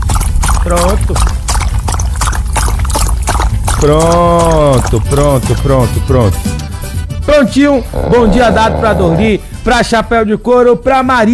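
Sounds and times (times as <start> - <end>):
water poured for animals to drink: 0.0 - 5.6
speech: 0.6 - 1.4, 3.8 - 6.6, 7.3 - 11.3
person making a short call: 7.7 - 9.5.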